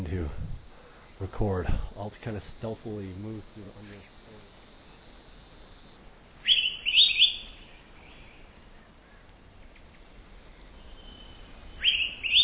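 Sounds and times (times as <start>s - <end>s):
faint noise: 0.0s - 12.4s
speech: 1.2s - 4.4s
Araripe manakin singing: 6.4s - 8.9s, 10.8s - 12.4s.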